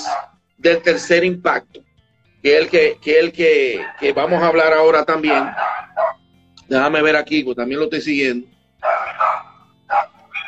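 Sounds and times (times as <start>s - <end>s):
neighborhood dogs barking: 0.0s - 1.2s, 3.5s - 6.3s, 8.8s - 10.4s
speech: 0.2s - 1.8s, 2.4s - 5.8s, 6.7s - 10.1s.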